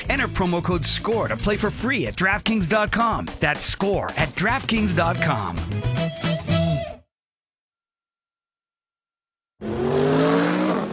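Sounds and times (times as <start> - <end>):
speech: 0.1 - 6.0
2015 Mercedes-Benz CLA accelerating out of a hairpin turn: 9.6 - 10.9.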